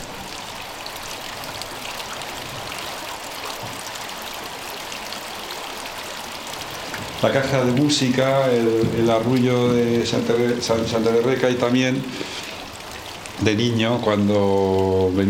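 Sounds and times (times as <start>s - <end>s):
river water rushing with bright splashing: 0.0s - 15.2s
speech: 7.2s - 12.3s, 13.4s - 15.2s.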